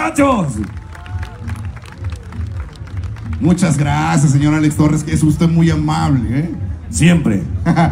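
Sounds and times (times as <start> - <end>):
speech: 0.0 - 0.8, 3.4 - 7.8
scattered cheers and voices: 0.0 - 7.7
large audience clapping: 0.3 - 4.5
laughter: 7.5 - 7.8.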